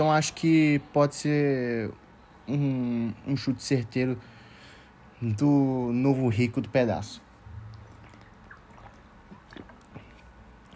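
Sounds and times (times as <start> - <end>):
speech: 0.0 - 4.3, 5.2 - 7.2
faint low hum: 0.0 - 10.7
person drinking a glass of water: 7.5 - 10.7.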